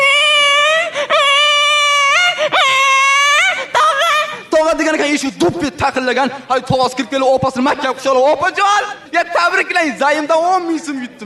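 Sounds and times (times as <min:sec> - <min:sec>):
baby crying in a high wail: 0:00.0 - 0:04.5
speech: 0:05.2 - 0:11.2.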